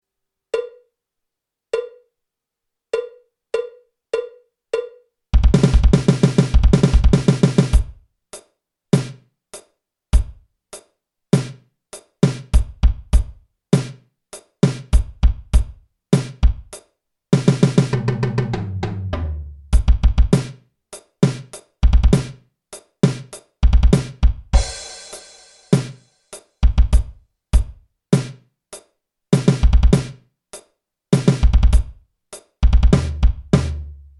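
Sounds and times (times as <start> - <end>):
hard rock drum kit solo: 3.0 - 28.4, 29.4 - 30.2, 31.2 - 34.1.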